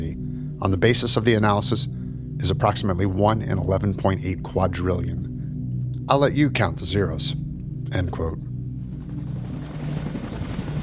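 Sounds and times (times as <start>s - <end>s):
speech: 0.6s - 5.3s, 6.1s - 8.5s
helicopter rotor chop leaving a military raid: 8.9s - 10.8s.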